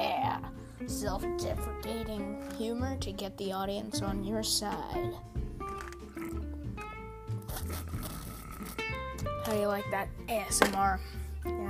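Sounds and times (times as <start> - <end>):
speech: 0.8 - 5.4, 9.5 - 11.6
person slurping from a cup: 5.6 - 6.6, 7.4 - 9.0.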